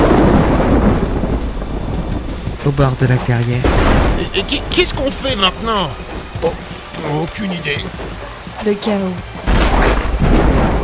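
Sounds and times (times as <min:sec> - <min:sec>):
thunder rumbling in a storm: 0:00.0 - 0:07.0, 0:09.3 - 0:10.8
rain hissing: 0:00.0 - 0:09.4
speech: 0:02.6 - 0:10.0.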